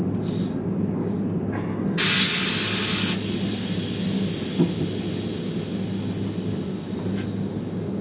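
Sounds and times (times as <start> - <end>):
Eurostar train doors: 0.2 - 7.9.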